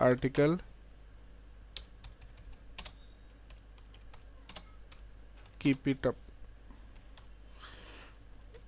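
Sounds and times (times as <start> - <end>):
speech: 0.0 - 0.7, 5.6 - 6.2
typing a comment on a computer keyboard: 1.8 - 5.8.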